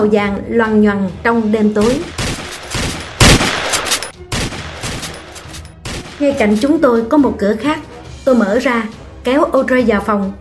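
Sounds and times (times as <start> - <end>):
speech: 0.0 - 2.2, 6.2 - 10.4
gunfire bursts outside in a street at night: 1.8 - 6.8.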